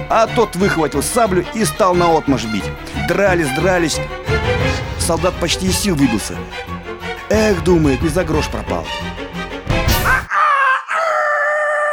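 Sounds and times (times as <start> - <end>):
speech: 0.1 - 4.4, 5.0 - 6.7, 7.3 - 9.1
rooster crowing: 10.3 - 11.9.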